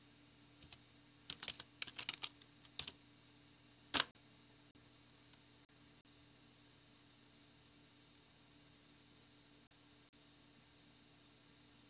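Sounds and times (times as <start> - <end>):
faint hum: 0.0 - 11.8
typing on a computer keyboard: 0.6 - 3.0, 3.9 - 4.1.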